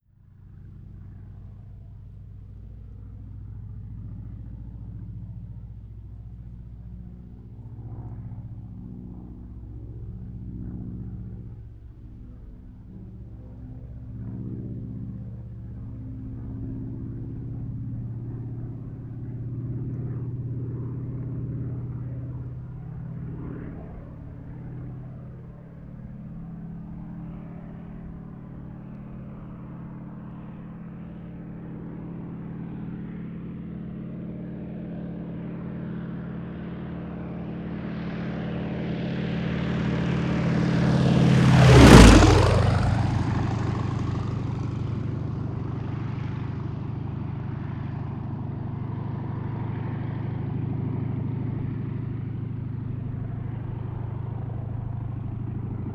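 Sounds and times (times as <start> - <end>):
plane flying fast by: 0.0 - 55.9.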